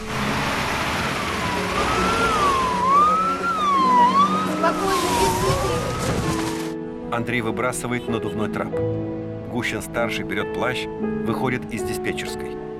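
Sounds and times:
ambulance siren wailing in the rain: 0:00.1 - 0:06.7
speech: 0:07.1 - 0:12.7.

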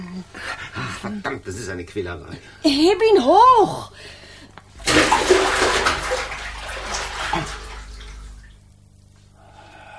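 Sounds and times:
speech: 0:01.0 - 0:04.2
water splashing and sloshing in a bathtub as a person is washed: 0:04.7 - 0:09.2.

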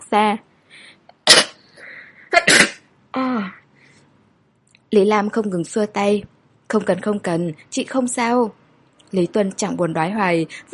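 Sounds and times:
speech: 0:00.1 - 0:00.5, 0:04.9 - 0:10.7
woman sneezing in a gust of cold wind: 0:02.3 - 0:02.8.

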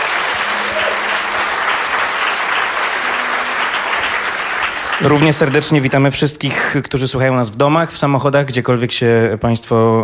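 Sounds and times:
studio audience applause: 0:00.0 - 0:06.3
speech: 0:05.0 - 0:10.0.

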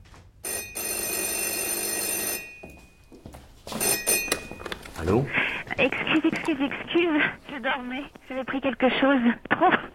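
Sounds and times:
telephone bell ringing at home: 0:00.4 - 0:04.8
speech: 0:05.0 - 0:09.9.

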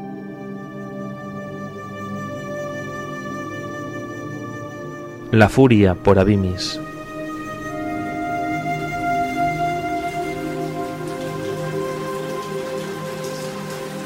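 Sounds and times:
faint sustained tones: 0:04.4 - 0:14.0
speech: 0:05.3 - 0:06.9
rain falling on a surface: 0:06.8 - 0:14.0.

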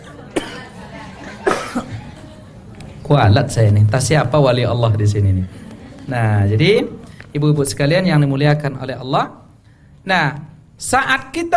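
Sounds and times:
preacher coughing: 0:00.4 - 0:00.8, 0:01.4 - 0:02.0
speech: 0:03.1 - 0:09.4, 0:10.0 - 0:11.5.

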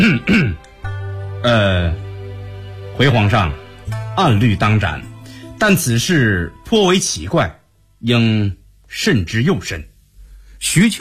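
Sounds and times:
speech: 0:00.0 - 0:00.4, 0:01.4 - 0:02.0, 0:03.0 - 0:03.6, 0:04.2 - 0:09.9, 0:10.6 - 0:11.0
dry cough: 0:00.0 - 0:00.6
throat clearing: 0:00.0 - 0:00.6.

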